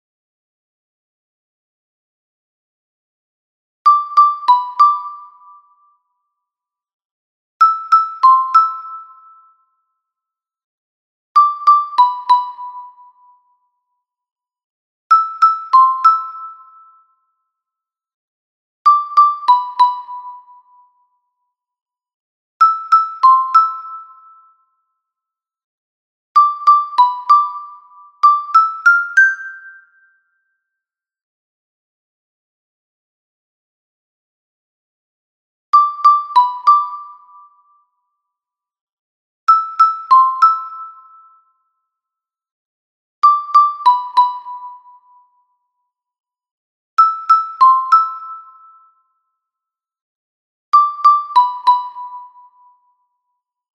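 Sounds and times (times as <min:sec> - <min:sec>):
soprano xylophone: 0:03.9 - 0:05.7, 0:07.6 - 0:09.5, 0:11.4 - 0:13.3, 0:15.1 - 0:16.9, 0:18.9 - 0:20.7, 0:22.6 - 0:24.4, 0:26.4 - 0:30.1, 0:35.8 - 0:37.5, 0:39.5 - 0:41.3, 0:43.2 - 0:45.0, 0:47.0 - 0:48.8, 0:50.8 - 0:52.5.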